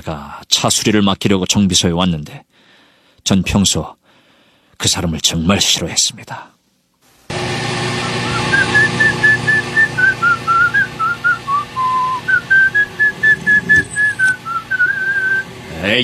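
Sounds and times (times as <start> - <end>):
speech: 0.0 - 2.5, 3.2 - 4.0, 4.8 - 6.6, 15.8 - 16.0
person whistling a hymn tune: 8.0 - 15.5
low engine-like hum: 8.0 - 16.0.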